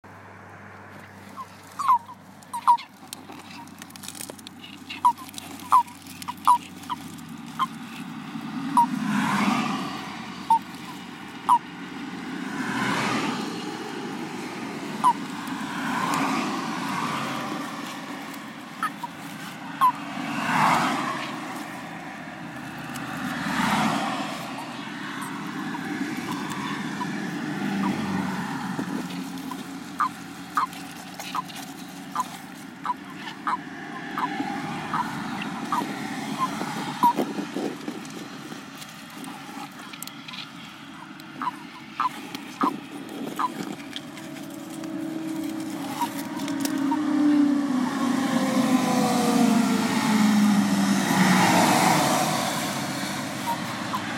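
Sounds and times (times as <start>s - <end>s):
common toads calling: 0.8s - 54.1s.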